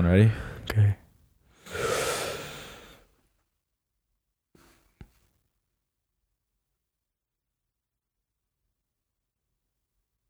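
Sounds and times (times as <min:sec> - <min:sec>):
speech: 0:00.0 - 0:01.0
long breathy exhale during a breathing exercise: 0:01.6 - 0:03.0.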